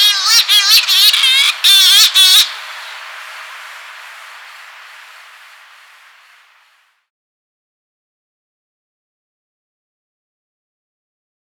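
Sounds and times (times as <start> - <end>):
Cory's shearwater flight call: 0.0 - 6.7
quiet hiss: 0.0 - 6.9.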